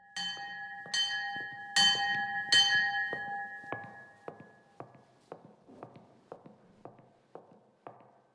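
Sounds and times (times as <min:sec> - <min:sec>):
observance bell clanging in an Augustinian nuns' monastery: 0:00.0 - 0:04.7
footsteps walking away: 0:00.2 - 0:08.3.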